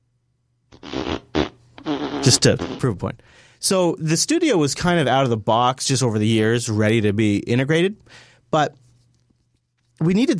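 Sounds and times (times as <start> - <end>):
fart sound effect from smart speaker: 0.7 - 3.0
speech: 2.3 - 8.8, 10.0 - 10.3.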